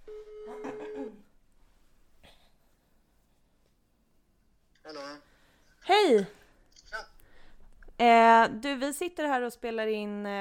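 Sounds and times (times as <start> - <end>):
phone call ring tone: 0.0 - 1.2
speech: 6.1 - 6.4, 8.0 - 10.3.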